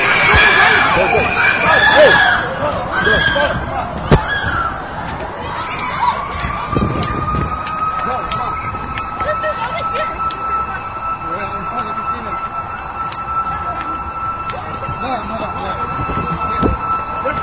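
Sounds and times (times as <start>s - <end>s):
ambulance siren: 0.0s - 17.4s
noisy crowd talking: 0.0s - 17.4s.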